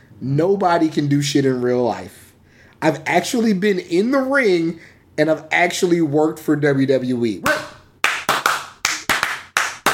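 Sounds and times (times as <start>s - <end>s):
speech: 0.2s - 2.2s, 2.8s - 7.6s
deliberate slow hand claps: 7.5s - 9.9s.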